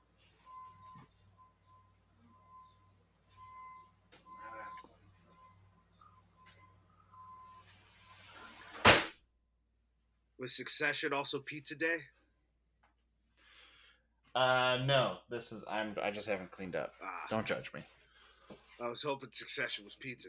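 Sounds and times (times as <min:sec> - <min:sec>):
reversing truck beeping outside: 0:00.0 - 0:08.3
speech: 0:10.4 - 0:12.2, 0:14.4 - 0:18.0, 0:18.8 - 0:20.2.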